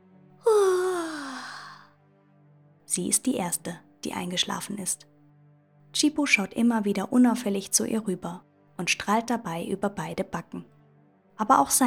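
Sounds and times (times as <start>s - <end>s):
long voiced yawn: 0.5s - 1.9s
speech: 2.9s - 5.1s, 6.0s - 10.8s, 11.4s - 11.8s.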